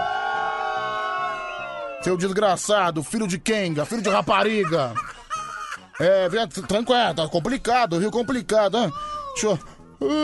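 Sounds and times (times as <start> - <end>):
crowd booing: 0.0 - 2.2
speech: 2.0 - 5.2, 6.0 - 10.2
laughter: 3.8 - 7.2.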